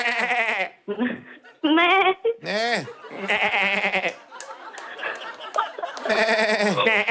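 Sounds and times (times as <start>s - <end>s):
phone caller mimicking a goat's bleat: 0.0s - 0.8s, 1.7s - 4.1s, 6.1s - 7.0s
speech: 0.0s - 3.5s
laughter: 2.4s - 7.0s.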